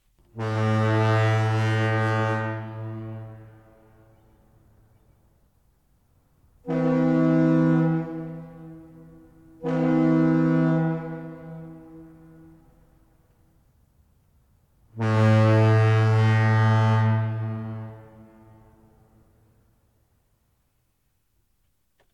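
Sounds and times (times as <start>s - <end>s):
foghorn blasts in San Francisco: 0.2s - 4.8s, 6.4s - 13.7s, 14.8s - 19.7s.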